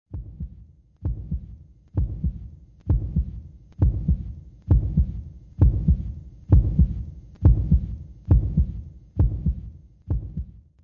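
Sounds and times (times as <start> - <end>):
woody heartbeat: 0.1 - 10.6.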